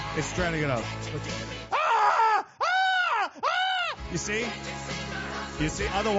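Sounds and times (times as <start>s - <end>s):
speech: 0.2s - 1.8s, 4.1s - 6.1s
person screaming: 1.7s - 4.0s.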